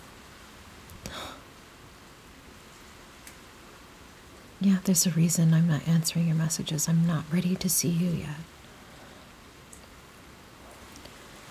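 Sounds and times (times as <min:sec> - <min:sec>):
steady rain falling outside: 0:00.0 - 0:11.4
scattered raindrops ticking: 0:04.6 - 0:08.5
speech: 0:04.6 - 0:08.6.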